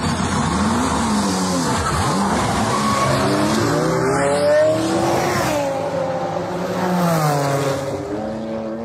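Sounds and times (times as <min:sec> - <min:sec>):
race car tires squealing while cornering: 0:00.0 - 0:05.7
tech-adapted race car engine roaring through gear changes: 0:00.0 - 0:08.8.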